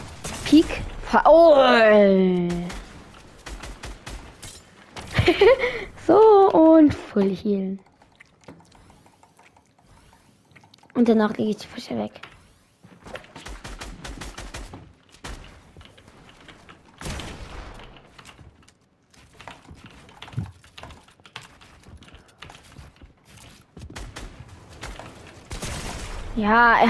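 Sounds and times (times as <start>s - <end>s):
video game gunfire bursts: 0.0s - 6.7s, 12.4s - 18.5s, 19.2s - 26.8s
speech: 0.5s - 2.8s, 5.3s - 7.9s, 11.0s - 12.3s, 26.4s - 26.8s
laughter: 5.1s - 5.9s.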